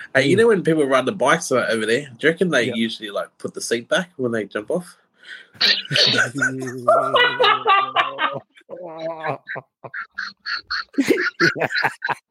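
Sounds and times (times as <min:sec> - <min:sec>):
speech: 0:00.1 - 0:12.2
people chattering: 0:05.6 - 0:09.5
laughter: 0:05.6 - 0:12.2
duck quacking: 0:09.3 - 0:11.6.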